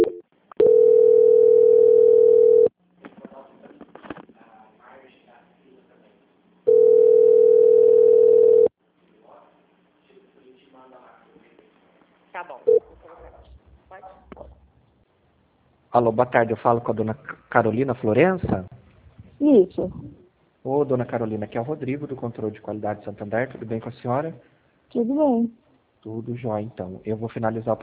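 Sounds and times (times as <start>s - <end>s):
telephone line tone during a call transfer: 0.0s - 2.7s, 6.7s - 8.7s
speech: 16.0s - 18.8s, 19.4s - 20.0s, 20.6s - 27.8s.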